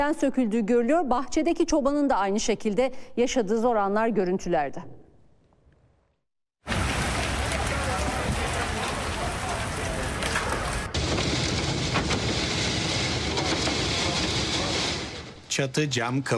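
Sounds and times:
speech: 0:00.0 - 0:05.0, 0:15.6 - 0:16.3
heavy rain battering a school in Gaziantep: 0:06.6 - 0:16.3
storm wind battering a school in Gaziantep: 0:06.7 - 0:15.5.

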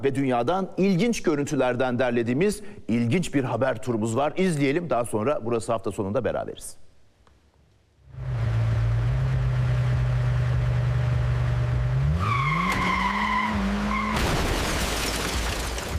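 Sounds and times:
speech: 0:00.0 - 0:06.8
car engine and rear tire whine while wheel spins in a repair shop: 0:08.0 - 0:14.1
car crashing into a wall: 0:14.0 - 0:15.9.

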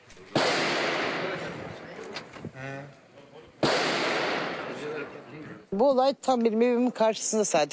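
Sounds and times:
gunshots fired by a tenant at a landlord couple in Maltepe Istanbul: 0:00.3 - 0:01.8, 0:03.6 - 0:05.1
speech: 0:05.1 - 0:07.7.

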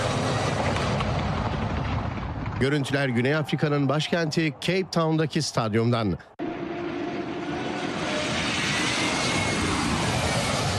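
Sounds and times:
two passenger planes flying low over a stadium roof in Cape Town: 0:00.0 - 0:04.1, 0:06.4 - 0:10.7
speech: 0:02.6 - 0:06.4.

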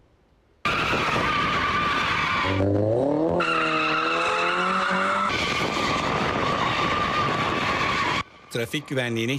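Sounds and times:
car tires skidding while drifting on streets in Ankara: 0:00.6 - 0:08.8
car engine revving: 0:02.4 - 0:06.3
speech: 0:02.5 - 0:02.9, 0:08.5 - 0:09.3.

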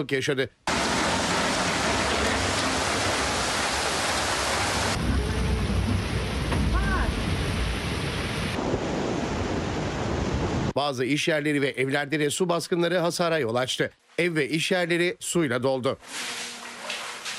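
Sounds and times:
speech: 0:00.0 - 0:00.7, 0:10.8 - 0:16.5
heavy rain downpour over the capital: 0:00.7 - 0:10.7.

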